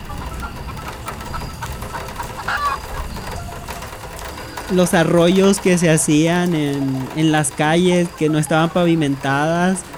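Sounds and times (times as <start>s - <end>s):
rooster crowing: 0.0s - 4.8s
chickens clucking: 0.0s - 9.9s
farmyard noise: 0.0s - 9.9s
speech: 4.7s - 9.9s.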